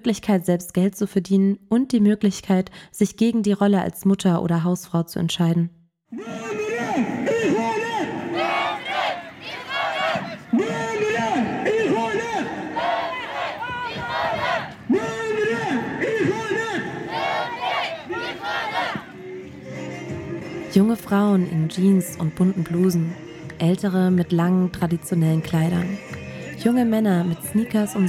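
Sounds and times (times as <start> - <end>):
speech: 0.0 - 7.2, 20.8 - 28.0
demonstrators chanting slogans at street protest: 6.2 - 20.7, 25.6 - 28.0.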